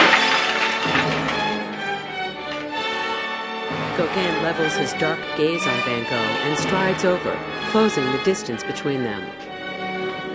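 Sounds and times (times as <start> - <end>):
drinking glass thrown and shattering: 0.0 - 3.3
speech: 4.0 - 9.4.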